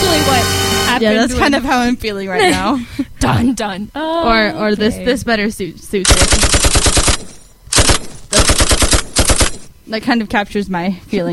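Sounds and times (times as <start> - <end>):
speech: 0.3 - 6.9, 9.9 - 11.3
automatic gunfire from a machine gun: 6.0 - 9.7.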